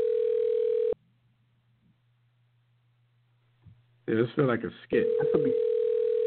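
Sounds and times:
electronic telephone ringing tone: 0.0s - 1.0s, 5.0s - 6.2s
faint low hum: 0.0s - 6.2s
speech: 4.1s - 5.7s.

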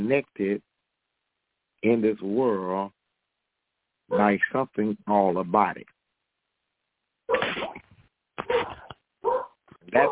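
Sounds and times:
speech: 0.0s - 0.7s, 1.8s - 3.0s, 4.1s - 5.9s
dog barking: 8.5s - 10.0s.

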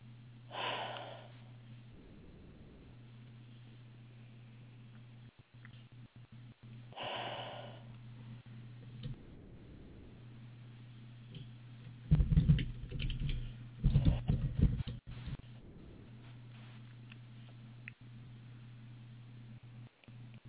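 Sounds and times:
steady low hum: 0.0s - 20.4s
slow deep breaths in and out: 0.5s - 2.7s, 6.9s - 8.0s.

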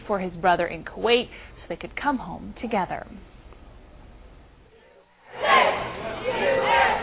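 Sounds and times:
speech: 0.1s - 3.3s
crowd cheering and shouting at a homecoming: 5.3s - 7.0s.

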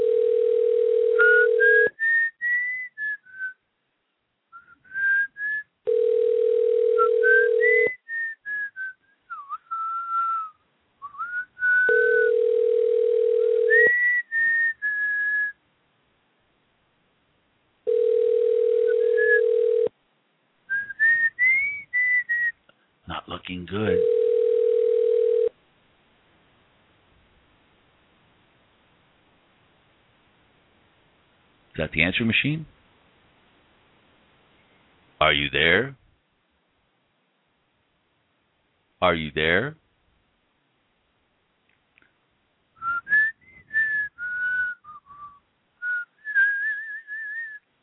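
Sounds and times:
phone ringback tone: 0.0s - 1.9s, 5.9s - 7.9s, 11.9s - 13.9s, 17.9s - 19.9s, 23.9s - 25.5s
bright whistled tune: 1.6s - 3.6s, 4.6s - 5.7s, 7.3s - 12.1s, 13.8s - 15.6s, 20.7s - 22.6s, 42.8s - 47.6s
speech: 23.7s - 23.9s, 31.9s - 32.8s, 35.3s - 36.0s, 39.0s - 39.8s.

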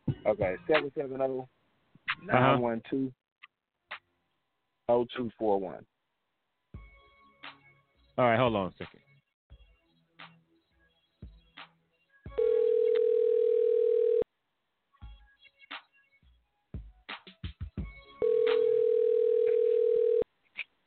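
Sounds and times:
speech: 0.3s - 1.6s, 2.2s - 3.2s, 4.9s - 5.9s, 8.2s - 9.0s
outgoing phone call ringback tones: 12.4s - 14.2s, 18.2s - 20.2s.

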